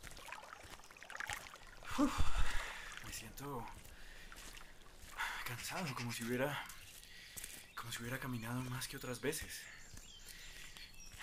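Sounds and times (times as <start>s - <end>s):
faint splashing: 0.0s - 6.8s
running water of a small forest stream: 0.0s - 7.7s
speech: 2.0s - 2.4s, 3.2s - 3.8s, 5.5s - 6.8s, 7.8s - 9.8s.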